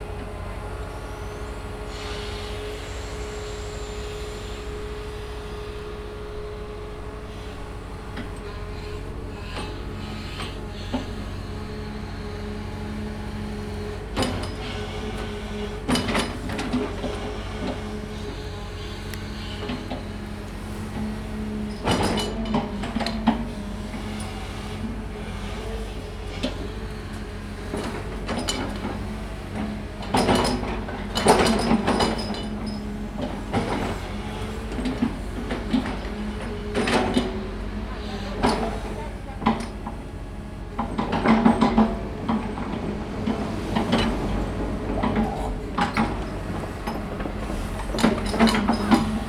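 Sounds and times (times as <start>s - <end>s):
crane digging up soil: 0.0s - 49.2s.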